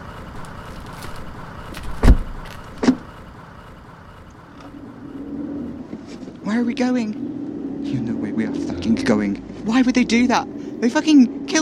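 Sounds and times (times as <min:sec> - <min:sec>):
car engine starting and car pulling away: 0:00.0 - 0:11.6
car door slams: 0:01.8 - 0:03.0
speech: 0:06.5 - 0:07.2, 0:07.9 - 0:11.6.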